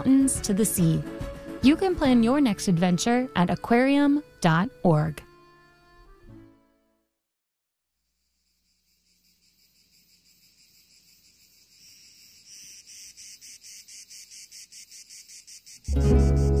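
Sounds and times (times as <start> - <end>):
speech: 0.0 - 5.3
cicadas droning on a fine summer day in the south: 8.0 - 16.5.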